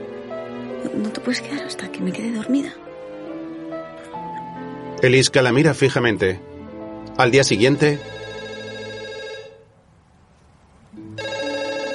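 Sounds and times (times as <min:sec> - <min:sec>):
speech: 0:01.0 - 0:02.9, 0:05.0 - 0:06.5, 0:07.2 - 0:08.2
telephone ringing with a bright harmonic electronic ringtone: 0:07.5 - 0:09.7, 0:11.1 - 0:11.9.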